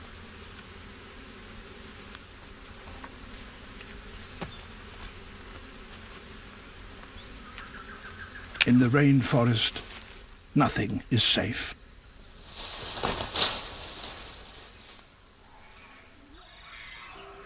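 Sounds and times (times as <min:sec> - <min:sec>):
honey bees buzzing around a hive being raided for honey: 0:00.0 - 0:17.4
speech: 0:08.7 - 0:09.9, 0:10.6 - 0:11.8.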